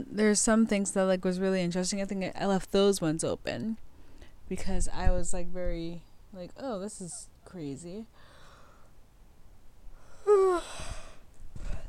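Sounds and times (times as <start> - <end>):
speech: 0.0 - 3.8, 4.5 - 8.2
soft small yawn: 10.0 - 11.8.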